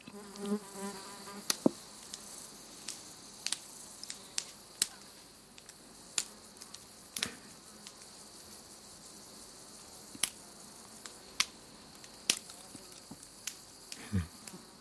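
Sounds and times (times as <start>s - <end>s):
insects buzzing outdoors: 0.0s - 14.7s
broom seed pods bursting and crackling: 1.4s - 8.2s, 11.0s - 14.7s.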